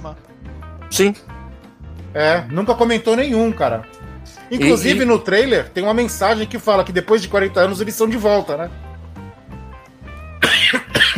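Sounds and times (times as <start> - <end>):
speech: 0.0 - 1.3, 2.1 - 8.8
person coughing: 10.4 - 11.1.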